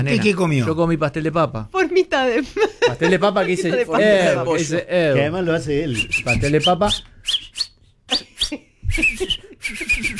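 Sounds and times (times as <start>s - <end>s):
speech: 0.0s - 7.1s
laughter: 2.4s - 4.7s
shrill whistle-like blasts: 6.0s - 10.1s.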